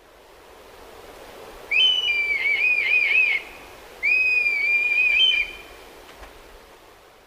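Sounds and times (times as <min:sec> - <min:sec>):
red kite mewing calls: 0:01.7 - 0:05.8.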